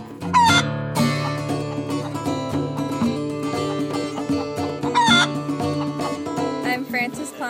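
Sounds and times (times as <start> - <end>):
backyard chickens clucking: 0.0 - 7.4
instrumental music backing: 0.0 - 7.4
backyard rooster crowing: 3.5 - 6.2.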